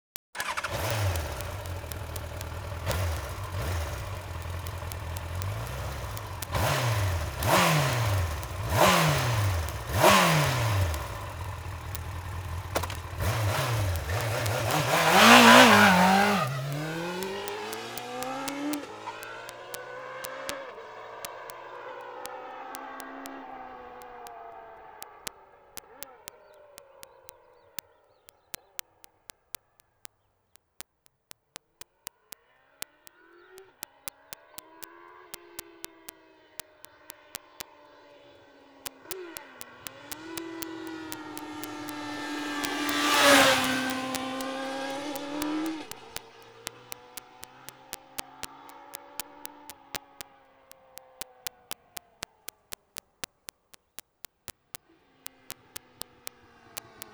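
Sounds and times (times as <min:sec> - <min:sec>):
Yamaha YZF R1 motorcycle engine: 0:00.4 - 0:27.3, 0:38.9 - 0:53.3, 0:55.2 - 0:57.1.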